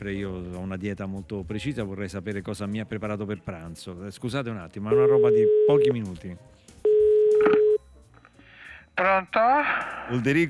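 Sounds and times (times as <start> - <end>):
speech: 0.0 - 6.6, 9.0 - 10.4
steady electronic telephone dialing tone: 6.8 - 7.8.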